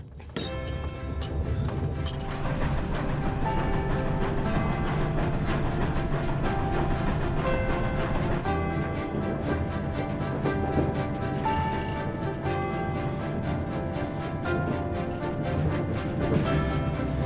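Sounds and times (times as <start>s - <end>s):
faint rhythmic clacking: 0.4s - 17.2s
luxury passenger train rolling along rails: 0.5s - 17.2s.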